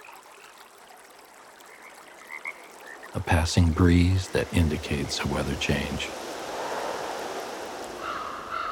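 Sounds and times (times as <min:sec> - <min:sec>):
speech: 0:03.1 - 0:06.3
ocean tide washing in: 0:04.1 - 0:08.6.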